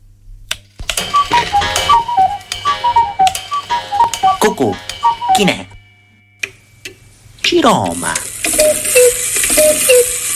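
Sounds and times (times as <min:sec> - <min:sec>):
atomic clock ticking for a radio time signal: 0:00.9 - 0:07.0, 0:07.7 - 0:10.3
short repeating descending chime melody: 0:01.1 - 0:06.4
speech: 0:04.5 - 0:05.7, 0:07.6 - 0:08.2.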